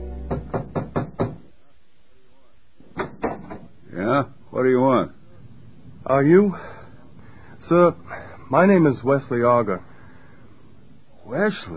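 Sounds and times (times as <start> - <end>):
firm knocks on a wooden room door: 0.3 - 1.4, 3.0 - 3.7
speech: 6.1 - 6.7, 7.7 - 9.9, 11.3 - 11.7.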